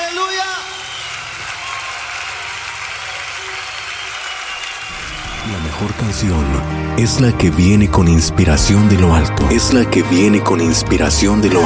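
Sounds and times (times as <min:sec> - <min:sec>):
church audience applauding: 0:00.0 - 0:07.9
speech: 0:05.5 - 0:11.6.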